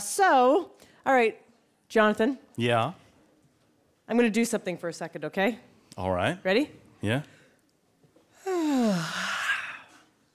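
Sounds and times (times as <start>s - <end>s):
speech: 0.2s - 3.0s, 4.1s - 7.4s
person yawning: 8.4s - 10.1s.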